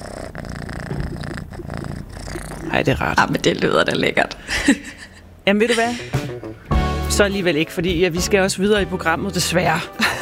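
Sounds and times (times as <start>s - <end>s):
cat purring: 0.0s - 4.3s
speech: 2.7s - 6.2s, 7.1s - 10.1s.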